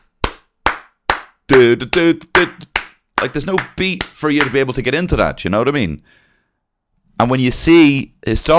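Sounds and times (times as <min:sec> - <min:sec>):
hand claps on the downbeat and upbeat: 0:00.0 - 0:04.7
speech: 0:01.5 - 0:06.2, 0:07.2 - 0:08.5.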